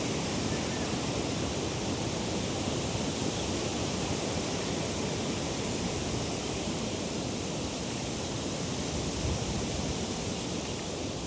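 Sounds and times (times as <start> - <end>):
wind rustling tree leaves: 0.0 - 11.2.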